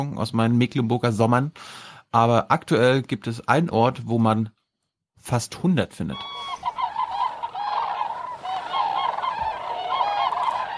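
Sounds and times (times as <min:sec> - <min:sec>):
speech: 0:00.0 - 0:04.6, 0:05.2 - 0:06.5
chorus of cranes and ducks calling in a nature reserve: 0:06.2 - 0:10.7.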